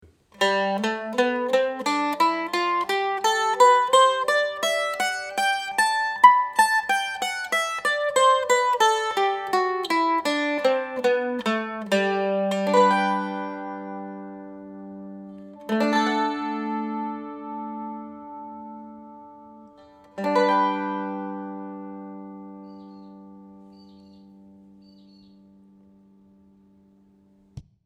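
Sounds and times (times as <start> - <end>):
mandolin playing a scale: 0.2 - 27.2.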